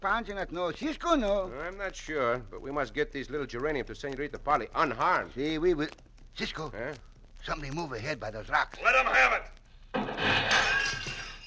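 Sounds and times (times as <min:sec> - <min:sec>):
speech: 0:00.0 - 0:09.6
clay flower pot smashing to pieces: 0:09.9 - 0:11.4
rattling spill of clay pot shards: 0:10.0 - 0:11.4.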